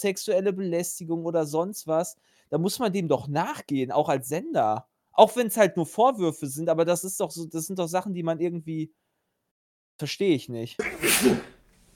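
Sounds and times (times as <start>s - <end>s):
speech: 0.0s - 9.0s, 10.0s - 11.6s
sneeze: 10.8s - 11.6s.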